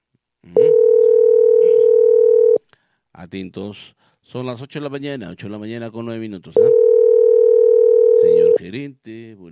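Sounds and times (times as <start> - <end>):
telephone ringback tone: 0.6 - 2.6, 6.6 - 8.6
speech: 3.3 - 6.9, 8.6 - 9.5.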